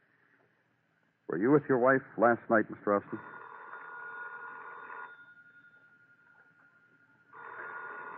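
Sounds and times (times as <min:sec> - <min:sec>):
speech: 0:01.3 - 0:03.4
telephone ringing: 0:02.9 - 0:08.1.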